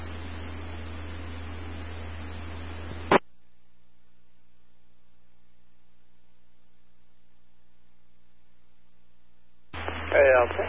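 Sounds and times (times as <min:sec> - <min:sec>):
heavy low hum: 0:00.0 - 0:10.6
harsh radio static: 0:02.9 - 0:03.3, 0:09.7 - 0:10.6.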